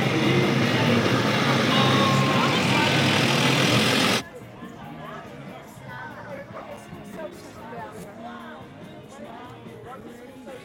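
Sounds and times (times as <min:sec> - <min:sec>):
faint traffic rumble: 0:00.0 - 0:04.2
loud rushing noise: 0:00.0 - 0:04.2
outdoor street crowd chatter at an autism awareness parade: 0:00.0 - 0:10.6.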